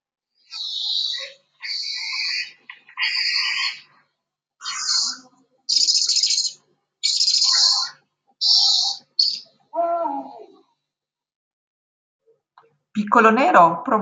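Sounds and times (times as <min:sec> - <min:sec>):
bright clear night bird calls: 0:00.4 - 0:04.0, 0:04.6 - 0:09.8
speech: 0:13.1 - 0:14.0.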